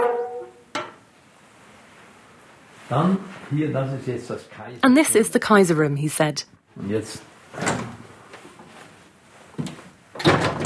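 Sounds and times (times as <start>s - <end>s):
speech: 2.9s - 7.6s
balcony doors being opened with wooden clunks: 9.6s - 10.6s.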